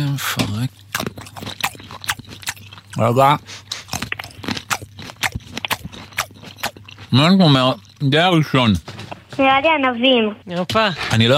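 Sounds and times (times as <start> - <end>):
speech: 0.0 - 0.9, 3.0 - 3.6, 7.1 - 11.3
crunchy chewing of food on a first bite: 0.0 - 9.3.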